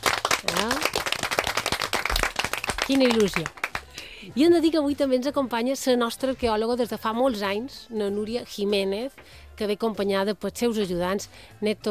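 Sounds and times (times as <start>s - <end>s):
small group applauding in a radio studio: 0.0s - 4.1s
speech: 2.9s - 3.6s, 4.2s - 11.9s.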